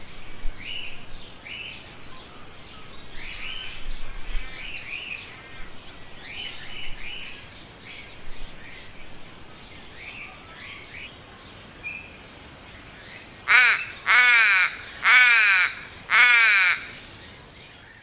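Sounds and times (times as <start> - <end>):
crow cawing: 13.5 - 17.0.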